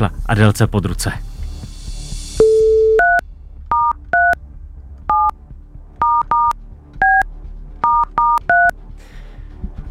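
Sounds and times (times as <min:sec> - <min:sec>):
speech: 0:00.0 - 0:01.3
telephone touch tone beeps dialing a number: 0:02.4 - 0:04.4, 0:05.1 - 0:05.4, 0:06.0 - 0:08.7.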